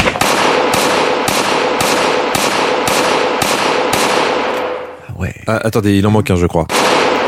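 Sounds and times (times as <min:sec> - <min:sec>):
rapid volley of loud gunshots: 0:00.0 - 0:04.8, 0:06.7 - 0:07.2
speech: 0:05.5 - 0:06.8.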